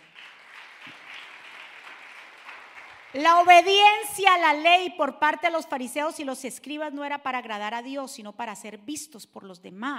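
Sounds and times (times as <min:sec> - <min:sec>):
large crowd applauding at a preacher's call: 0:00.0 - 0:03.7
speech: 0:03.1 - 0:09.9.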